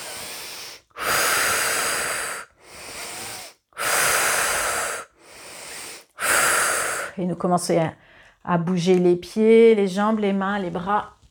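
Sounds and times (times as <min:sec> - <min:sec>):
deep forceful breaths drawn in and pushed out: 0:00.0 - 0:07.2
speech: 0:07.2 - 0:11.2.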